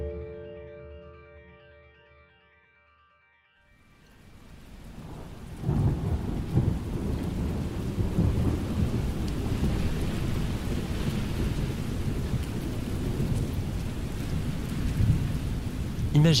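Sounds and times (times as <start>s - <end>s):
dense rain beating on a window: 4.0s - 16.3s.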